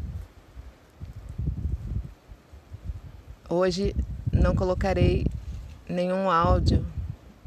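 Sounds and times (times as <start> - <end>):
gusty wind blowing outdoors buffeting the microphone: 0.0 - 7.4
leaves rustling: 0.0 - 7.4
speech: 3.5 - 7.0.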